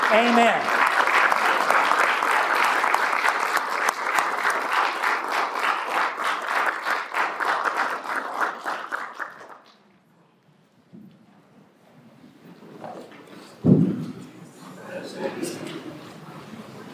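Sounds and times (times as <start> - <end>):
crowd applauding a speaker: 0.0 - 9.8
speech: 0.1 - 0.8.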